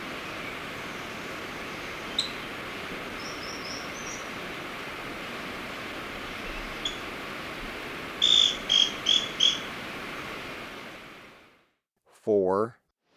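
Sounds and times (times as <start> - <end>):
scale-crested pygmy-tyrant calling in Ecuador: 0.0 - 5.3, 6.1 - 7.2, 8.1 - 9.8
steady background hiss: 0.0 - 11.6
speech: 12.3 - 12.8.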